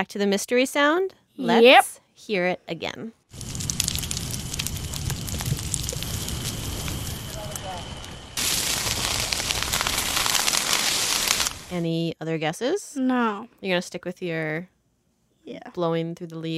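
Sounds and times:
speech: 0:00.0 - 0:03.5, 0:11.7 - 0:14.7, 0:15.4 - 0:16.5
trees burning in a wild forest fire in California: 0:03.3 - 0:11.9.

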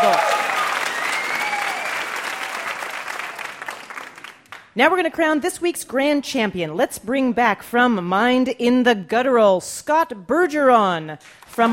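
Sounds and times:
crowd clapping: 0:00.0 - 0:04.7
speech: 0:04.8 - 0:11.7.

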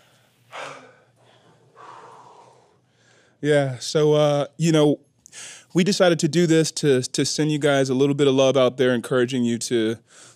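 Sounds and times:
heavy breathing of band members catching their breath: 0:00.0 - 0:03.4, 0:05.3 - 0:05.7, 0:10.1 - 0:10.3
speech: 0:03.4 - 0:10.3.

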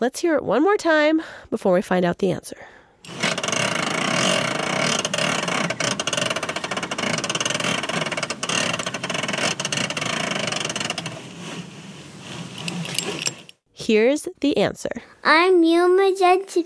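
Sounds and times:
speech: 0:00.0 - 0:03.4, 0:13.9 - 0:16.6
car seatbelt ratchet clicking and whirring as it is released slowly: 0:03.0 - 0:11.1.

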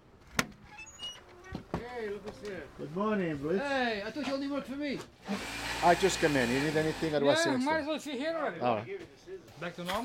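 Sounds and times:
door opening: 0:00.3 - 0:02.5
speech: 0:02.0 - 0:10.0.

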